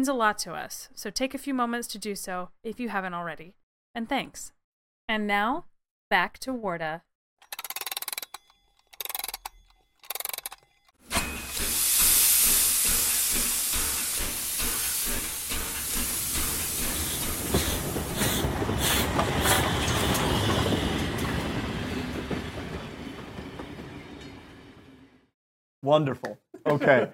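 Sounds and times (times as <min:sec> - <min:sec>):
speech: 0:00.0 - 0:07.1, 0:25.9 - 0:27.1
wheels clacking over track joints: 0:08.8 - 0:24.5
passenger train rolling along the rails: 0:11.1 - 0:25.2
laughter: 0:26.6 - 0:27.1.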